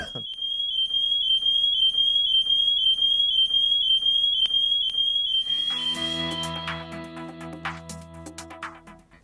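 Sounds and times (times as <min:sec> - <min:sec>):
loud shrill smoke alarm tone pulsing: 0:00.0 - 0:07.2
musical backdrop with chimes and low tones: 0:05.7 - 0:07.6.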